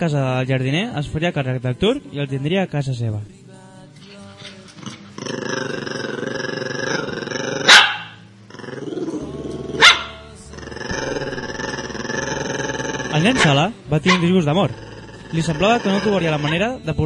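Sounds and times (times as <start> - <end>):
speech: 0.0 - 3.4, 13.2 - 17.0
dog growling and snarling: 4.0 - 16.9
dog barking: 7.6 - 8.2, 9.8 - 10.3, 13.3 - 14.4.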